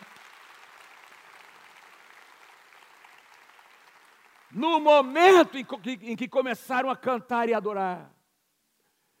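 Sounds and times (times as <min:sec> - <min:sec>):
large crowd applauding: 0:00.0 - 0:05.5
speech: 0:04.5 - 0:08.2.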